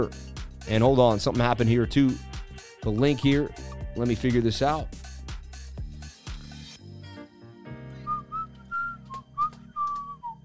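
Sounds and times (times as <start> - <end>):
speech: 0.0 - 5.0
person whistling a short wavering tune: 8.0 - 10.4.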